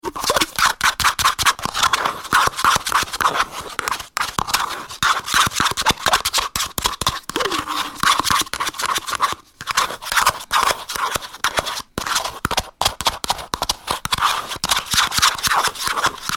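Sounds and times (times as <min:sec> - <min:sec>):
spoon scraping yogurt out of a plastic pot: 0:00.0 - 0:16.3.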